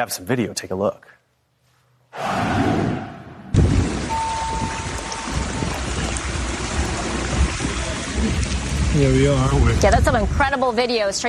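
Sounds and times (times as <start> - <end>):
speech: 0.0 - 1.2, 9.0 - 11.2
heavy torrential rain pouring: 3.6 - 11.2
water rushing through flooded streets: 3.6 - 11.2.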